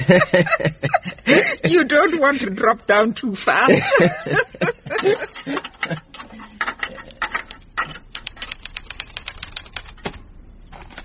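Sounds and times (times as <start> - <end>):
laughter: 0.0 - 1.9, 3.6 - 6.2
speech: 0.1 - 6.0
typewriter keys clacking: 5.0 - 11.0.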